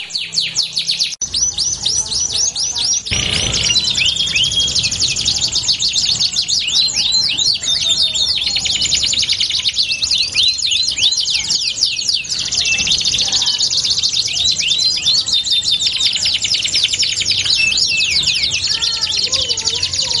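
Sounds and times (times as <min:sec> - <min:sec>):
Belgian canary song with fast chattering trills and swooping notes: 0:00.0 - 0:20.1.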